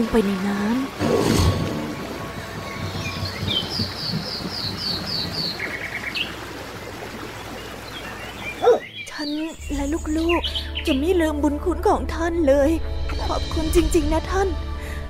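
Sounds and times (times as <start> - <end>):
speech: 0.0 - 1.4, 9.2 - 14.7
steady outdoor ambience: 0.0 - 10.7
birds chirping in quick repeated bursts: 0.0 - 11.4
dog barking while fighting a crocodile: 8.6 - 8.9.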